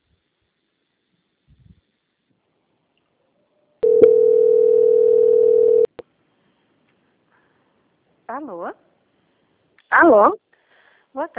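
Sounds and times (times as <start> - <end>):
telephone line tone while a bank call is transferred: 3.8 - 5.9
speech: 8.4 - 8.9, 9.9 - 10.4, 11.1 - 11.3.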